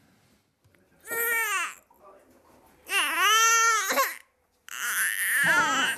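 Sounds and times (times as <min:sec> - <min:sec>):
newborn baby a few weeks old crying in Lindås Norway: 0:01.1 - 0:01.8, 0:02.9 - 0:05.9.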